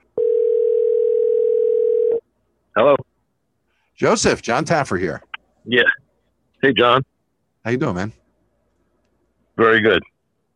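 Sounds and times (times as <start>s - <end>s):
telephone dial tone: 0.2s - 2.2s
speech: 2.8s - 3.1s, 4.0s - 6.0s, 6.6s - 8.2s, 9.6s - 10.1s.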